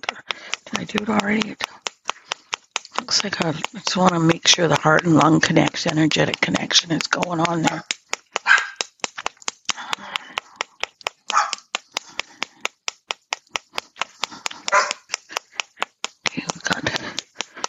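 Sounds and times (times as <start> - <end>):
puppy claws clicking and scuffling on a hard floor: 0.0 - 17.6
speech: 0.7 - 1.8, 3.1 - 7.9
two puppies yipping and barking while play-fighting indoors: 8.5 - 8.8, 11.3 - 11.6, 14.7 - 15.1.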